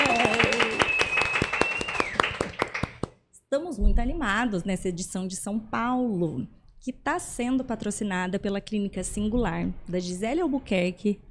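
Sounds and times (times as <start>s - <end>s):
long high whistle-like tone: 0.0s - 2.4s
audience applauding with brisk steady clapping: 0.0s - 3.2s
speech: 3.5s - 11.2s.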